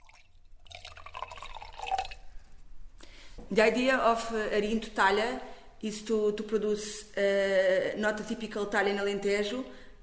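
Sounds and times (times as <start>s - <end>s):
white Arinto wine pouring into a glass in a winery tasting room: 0.0s - 2.4s
speech: 3.5s - 10.0s.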